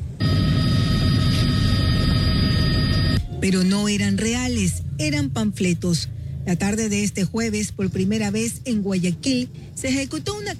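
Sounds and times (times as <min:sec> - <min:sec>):
military helicopter flying over a city: 0:00.0 - 0:03.4
speech: 0:03.4 - 0:10.5.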